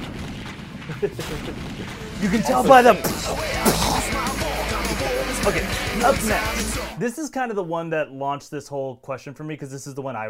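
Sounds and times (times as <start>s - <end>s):
cannon fire sound effect: 0.0s - 4.4s
laughter: 0.9s - 7.0s
speech: 1.0s - 10.2s.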